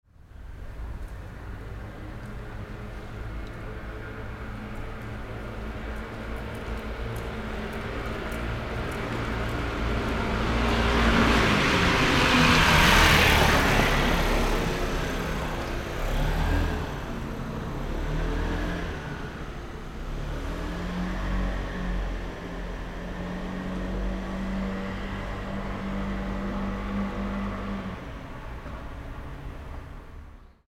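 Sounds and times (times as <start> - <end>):
motorcycle passing by: 7.3 - 28.2.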